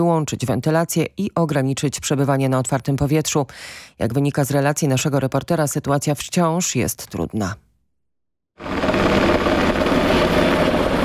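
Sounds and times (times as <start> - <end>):
speech: 0.0 - 7.6
Black Hawk police helicopter flying overhead: 8.6 - 11.0.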